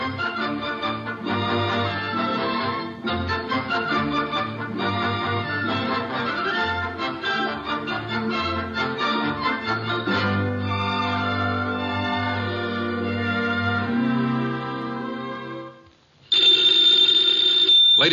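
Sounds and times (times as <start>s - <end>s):
swelling orchestral music cue: 0.0s - 15.7s
loud telephone bell ringing in a metallic jangle: 16.3s - 18.1s.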